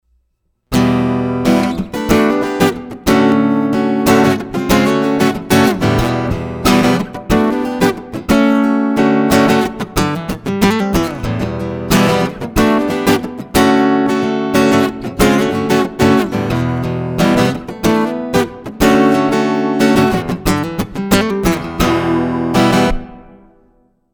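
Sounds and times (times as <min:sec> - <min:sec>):
percussive acoustic guitar through a pickup preamp: 0:00.7 - 0:23.8.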